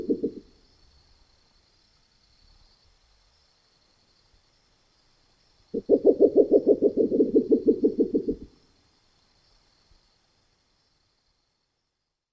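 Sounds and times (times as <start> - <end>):
spectacled owl calling in the Neotropics: 0.0 - 0.5, 5.8 - 8.5.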